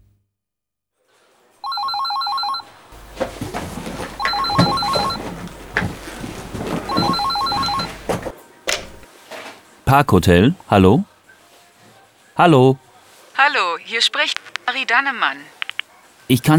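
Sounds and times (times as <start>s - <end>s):
telephone ringing with bright trilling electronic bursts: 1.6s - 9.0s
steady noise: 1.6s - 9.1s
speech: 9.9s - 11.1s, 12.4s - 12.8s, 13.4s - 15.5s, 16.3s - 16.5s.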